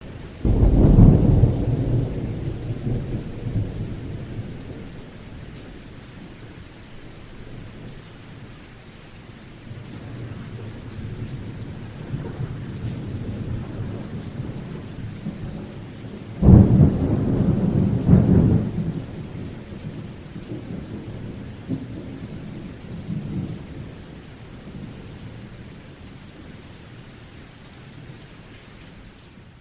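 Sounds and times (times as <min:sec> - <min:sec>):
storm: 0:00.1 - 0:06.4, 0:09.7 - 0:25.5.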